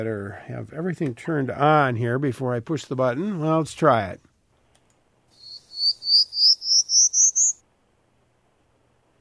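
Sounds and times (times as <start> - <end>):
speech: 0.0 - 4.3
Prairie Warbler buzzy rising song: 5.3 - 7.6.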